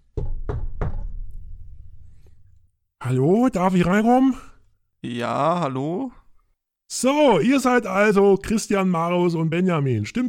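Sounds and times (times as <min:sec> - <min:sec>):
firm knocks on a wooden door: 0:00.1 - 0:01.2
speech: 0:03.1 - 0:06.2, 0:06.9 - 0:10.2.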